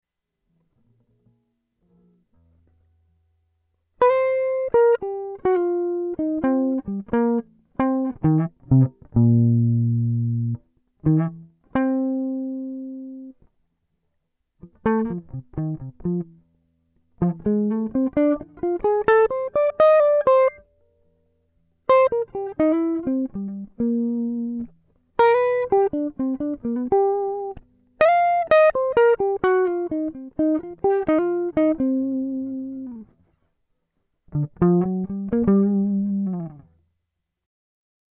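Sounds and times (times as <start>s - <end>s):
slow twelve-bar blues solo: 4.0s - 13.3s, 14.6s - 16.4s, 17.1s - 20.7s, 21.9s - 33.1s, 34.3s - 36.6s.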